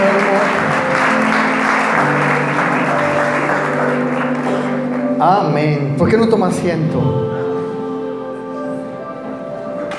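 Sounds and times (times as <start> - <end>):
church congregation applauding: 0.0 - 5.6
sustained musical tones: 0.0 - 9.9
speech: 5.2 - 7.3.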